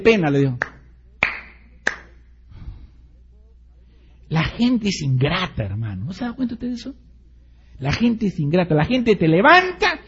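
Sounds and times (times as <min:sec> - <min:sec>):
speech: 0:00.0 - 0:00.7, 0:04.3 - 0:07.1, 0:07.8 - 0:10.0
sharp hand claps: 0:00.6 - 0:02.2
faint low murmur: 0:00.6 - 0:09.0.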